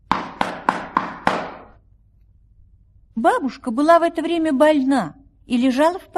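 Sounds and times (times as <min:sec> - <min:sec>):
sharp knocking on a wooden door: 0:00.1 - 0:01.8
speech: 0:03.2 - 0:06.1.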